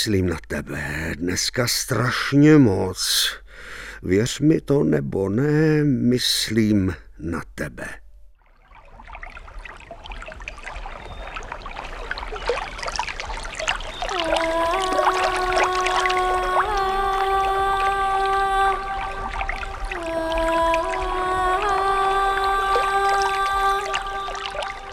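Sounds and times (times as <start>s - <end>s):
speech: 0.0s - 8.0s
swollen stream water rushing and gurgling: 8.5s - 24.9s
sustained droning tones: 13.5s - 24.9s.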